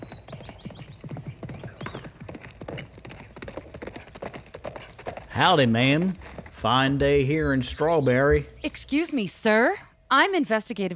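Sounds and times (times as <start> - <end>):
horse hoofbeats galloping on a dirt road in a video game: 0.0 - 8.5
speech: 5.4 - 10.9.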